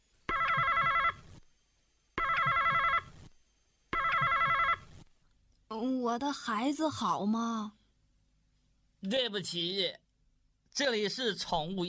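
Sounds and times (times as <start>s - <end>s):
telephone ringing with a bright warbling electronic trill: 0.3s - 1.2s, 2.2s - 3.1s, 3.9s - 4.9s
speech: 6.1s - 7.8s, 9.0s - 10.0s, 10.8s - 11.8s.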